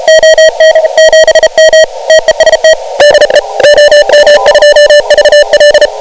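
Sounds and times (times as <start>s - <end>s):
28MHz radio signal: 0.0s - 5.9s.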